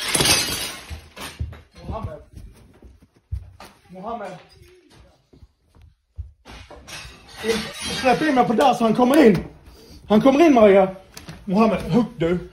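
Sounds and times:
glass being smashed with a stone: 0.0 - 1.6, 6.8 - 8.6
knocks and clatter: 0.0 - 4.6, 6.1 - 9.5
speech: 4.0 - 4.6, 7.4 - 9.5, 10.1 - 12.5.

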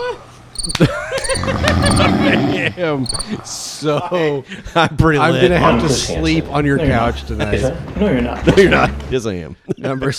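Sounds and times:
speech: 0.0 - 10.1
crickets chirping: 0.6 - 2.1, 3.0 - 3.4.

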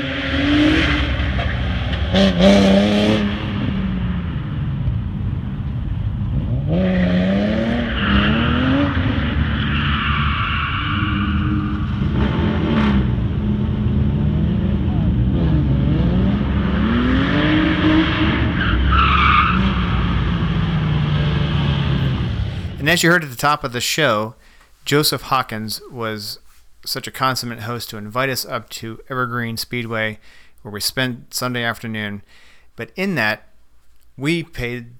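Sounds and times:
heavily modified race car engine revving on a speedway track: 0.0 - 22.8
speech: 2.2 - 2.8, 22.9 - 33.5, 34.2 - 34.9.

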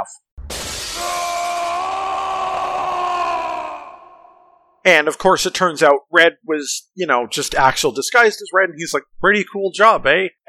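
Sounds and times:
harsh crashing noise: 0.4 - 2.2
video game villain's long falling scream: 0.9 - 4.7
speech: 4.8 - 10.4.

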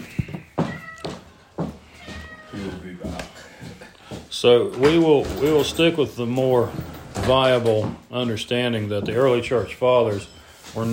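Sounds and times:
cat meowing while being put out: 0.0 - 1.3, 1.9 - 2.9
speech: 4.4 - 10.9.

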